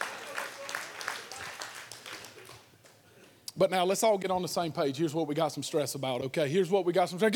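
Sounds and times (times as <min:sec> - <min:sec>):
audience clapping in a roomy space: 0:00.0 - 0:03.0
speech: 0:03.6 - 0:07.3.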